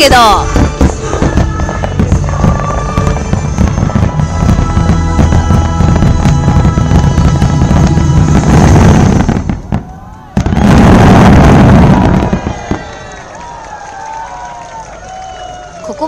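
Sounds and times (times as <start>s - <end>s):
speech: 0.0s - 0.6s
booming music: 0.0s - 12.8s
fireworks exploding at a countdown show: 0.0s - 14.3s
crowd noise: 0.0s - 16.0s
fireworks crackling: 0.0s - 16.0s.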